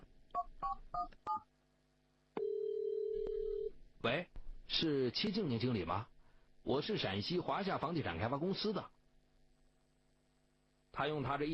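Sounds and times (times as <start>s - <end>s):
steady telephone line tone: 2.4s - 3.7s
speech: 4.0s - 8.9s, 11.0s - 11.5s.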